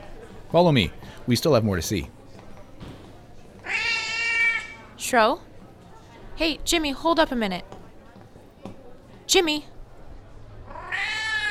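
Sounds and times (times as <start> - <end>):
speech: 0.5 - 2.2, 5.1 - 5.5, 6.4 - 7.8, 9.3 - 9.7
cat meowing: 3.6 - 4.8, 10.6 - 11.5.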